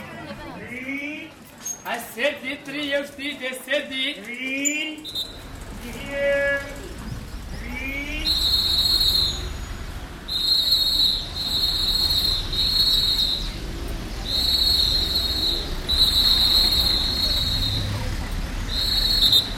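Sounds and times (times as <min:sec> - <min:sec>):
steady low rumble of traffic or engines: 0:00.4 - 0:19.5
high piercing whistle-like tone: 0:05.0 - 0:05.5, 0:07.6 - 0:19.5
voices calling out in a busy street: 0:05.0 - 0:19.5.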